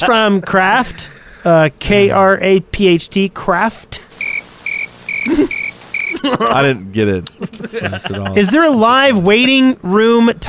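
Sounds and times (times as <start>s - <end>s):
laughter: 0.0s - 0.6s, 5.2s - 9.6s
speech: 0.0s - 4.3s, 5.2s - 10.4s
cricket chirping: 4.2s - 6.2s.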